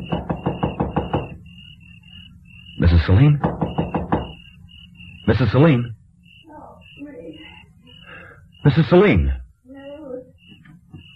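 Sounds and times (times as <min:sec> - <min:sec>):
firm knuckle raps on a house door at night: 0:00.0 - 0:01.4, 0:03.2 - 0:04.4
thin steady high tone: 0:00.0 - 0:11.1
speech: 0:02.8 - 0:03.5, 0:05.3 - 0:06.0, 0:08.6 - 0:09.4.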